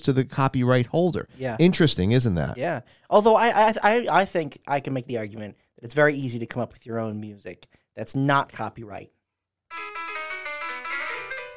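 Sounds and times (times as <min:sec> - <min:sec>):
speech: 0:00.0 - 0:10.0
short piano melody played on a piano app on a phone: 0:09.7 - 0:11.5.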